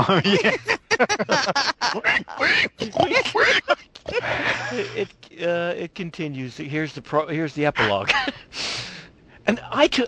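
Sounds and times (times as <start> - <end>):
laughter: 0.0 - 5.2, 7.8 - 8.5
speech: 0.0 - 8.9, 9.5 - 10.0
person imitating pig snorting grunts and squealing oinks: 1.9 - 5.0.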